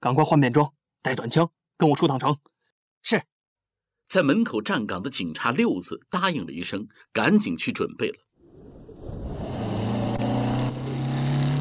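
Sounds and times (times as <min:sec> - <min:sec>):
speech: 0:00.0 - 0:03.3, 0:04.1 - 0:08.3
motorcycle being ridden: 0:09.1 - 0:11.5.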